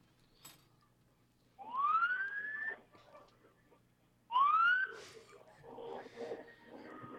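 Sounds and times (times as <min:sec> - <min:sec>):
police sirens wailing at a parade start: 0:01.6 - 0:02.8, 0:04.3 - 0:05.0.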